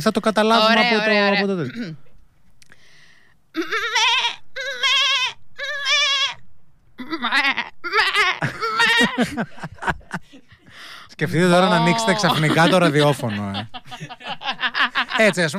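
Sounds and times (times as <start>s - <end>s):
speech: 0.0s - 2.0s, 3.6s - 3.8s, 9.1s - 10.0s, 11.2s - 15.5s
young goat bleating: 3.6s - 6.4s, 7.0s - 9.1s, 11.6s - 12.3s
laughter: 8.4s - 10.8s, 11.6s - 15.5s.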